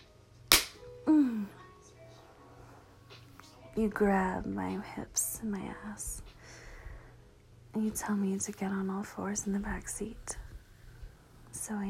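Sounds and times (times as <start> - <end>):
hand slapping skin: 0.5 - 0.8
speech: 3.8 - 6.3, 7.7 - 10.4, 11.6 - 11.8.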